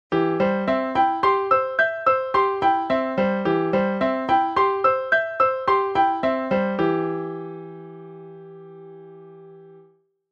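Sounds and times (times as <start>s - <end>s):
arpeggio: 0.1s - 9.3s.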